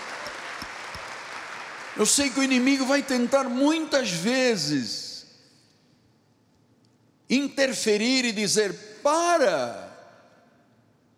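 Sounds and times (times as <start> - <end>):
audience clapping: 0.0 - 2.7
speech: 2.0 - 5.0, 7.3 - 9.9.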